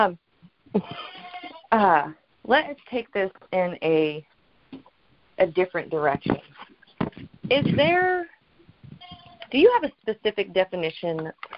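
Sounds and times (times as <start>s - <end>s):
speech: 0.0s - 1.1s, 1.7s - 4.8s, 5.4s - 6.7s, 7.5s - 8.4s, 9.5s - 11.5s
goat bleating: 1.0s - 1.8s, 8.9s - 9.6s.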